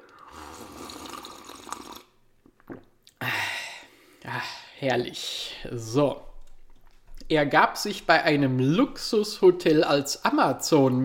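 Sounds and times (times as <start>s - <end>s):
freshly tapped caffeinated apple spritzer pouring into a small cup: 0.3s - 2.1s
speech: 4.4s - 6.3s, 7.3s - 11.0s.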